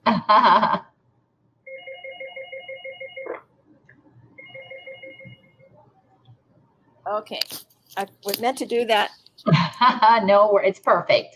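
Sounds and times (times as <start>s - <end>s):
speech: 0.1s - 0.9s, 7.1s - 11.3s
phone electronic ringtone trilling in warbling bursts: 1.7s - 3.4s, 4.4s - 5.7s.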